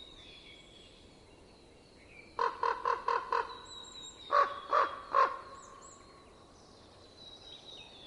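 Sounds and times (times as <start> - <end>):
Common raven croaking in winter: 2.4 - 3.5, 4.3 - 5.5.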